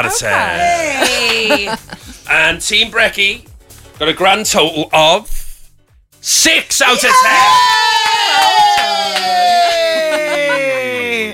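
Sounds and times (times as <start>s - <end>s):
laughter: 0.0s - 2.2s, 8.8s - 11.3s
speech: 0.0s - 5.4s, 6.2s - 9.4s
crowd cheering with a whooping cry falling in pitch: 6.9s - 11.3s.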